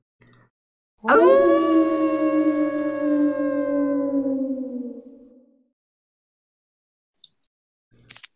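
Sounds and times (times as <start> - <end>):
speech: 1.0 - 1.5
huge dog howling on the moors: 1.0 - 5.5.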